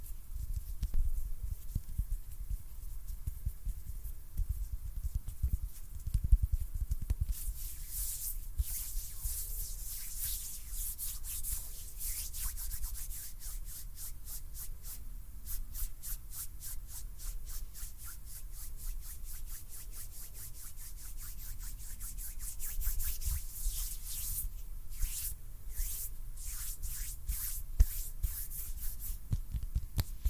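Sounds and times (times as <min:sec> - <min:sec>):
hands rubbing and brushing against a surface: 0:00.0 - 0:30.2.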